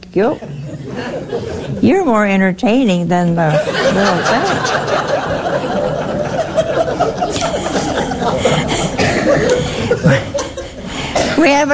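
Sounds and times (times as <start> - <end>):
speech: 0.1 - 6.0, 11.4 - 11.7
people chuckling: 0.3 - 1.8, 3.4 - 11.1
person coughing: 8.5 - 11.6.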